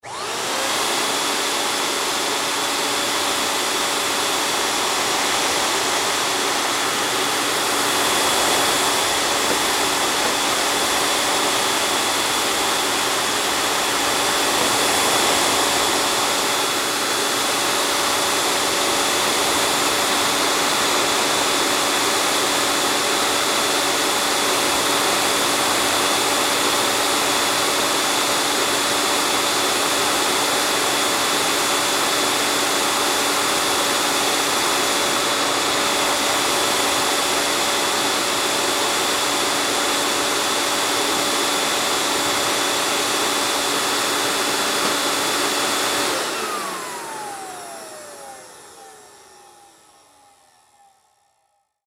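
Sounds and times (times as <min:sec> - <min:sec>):
industrial sand blaster on run off: 0:00.0 - 0:50.9.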